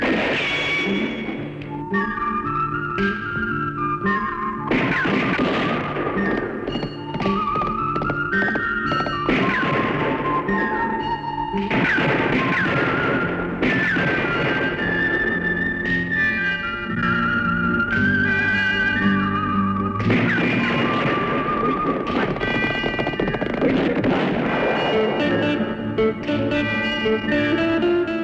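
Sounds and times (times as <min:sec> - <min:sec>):
sharp gunshot cracks: 0:00.0 - 0:01.4, 0:04.7 - 0:06.4, 0:09.3 - 0:10.4, 0:11.7 - 0:14.9, 0:20.1 - 0:25.4
loud orchestral western score: 0:00.0 - 0:28.2
strummed guitar: 0:00.0 - 0:28.2
whistled melody: 0:00.3 - 0:23.4, 0:24.6 - 0:28.2.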